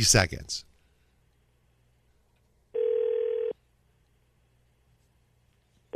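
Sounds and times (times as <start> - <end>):
speech: 0.0 - 0.7
telephone ringback tone on an outgoing call: 2.8 - 3.6.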